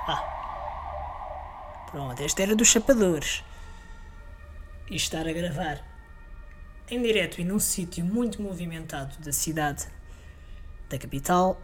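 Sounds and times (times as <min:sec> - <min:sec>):
low traffic rumble: 0:00.0 - 0:04.7
ambulance siren wailing in a busy street: 0:00.0 - 0:05.7
speech: 0:00.1 - 0:00.4, 0:01.9 - 0:03.5, 0:04.9 - 0:05.9, 0:06.9 - 0:10.0, 0:10.9 - 0:11.6.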